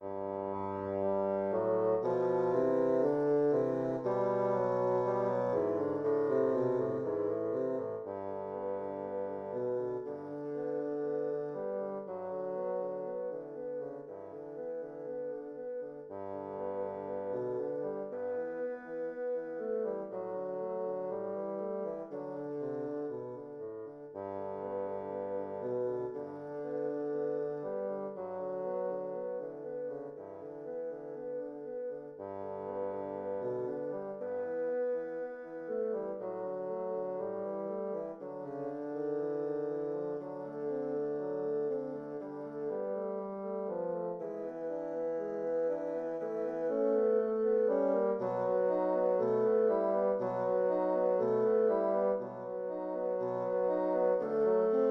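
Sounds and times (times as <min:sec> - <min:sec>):
two bassoons playing a study: 0:00.0 - 0:54.8.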